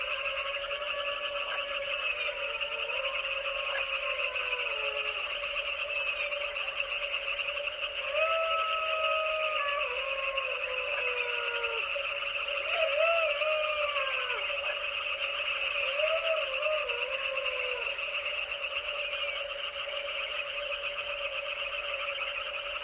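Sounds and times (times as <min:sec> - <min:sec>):
jackals howling at night in the Danube Delta: 0:00.0 - 0:20.0
frogs croaking in a chorus at night in the Danube Delta: 0:00.0 - 0:22.8
insects buzzing at night in the Danube Delta: 0:00.0 - 0:22.8.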